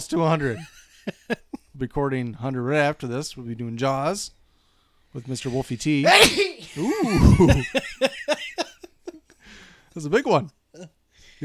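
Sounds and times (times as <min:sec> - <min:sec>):
speech: 0:00.0 - 0:04.4, 0:05.1 - 0:08.1, 0:10.0 - 0:11.4
drawn-out exclamation: 0:06.0 - 0:07.7
laughter: 0:06.8 - 0:08.9.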